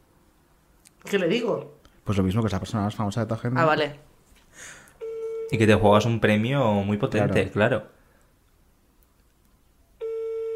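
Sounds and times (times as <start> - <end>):
speech: 1.0 - 4.8, 5.5 - 8.0
phone line's electronic ringing tone beep: 5.0 - 5.6, 10.0 - 10.5.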